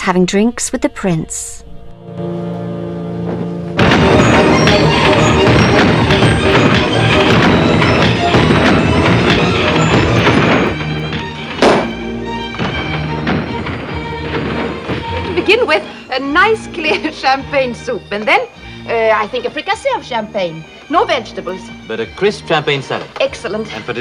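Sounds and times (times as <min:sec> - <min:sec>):
speech: 0:00.0 - 0:02.4, 0:15.7 - 0:23.9
sharp isolated firework bang: 0:03.3 - 0:16.0
fireworks bursting in thuds and crackles: 0:03.3 - 0:17.1.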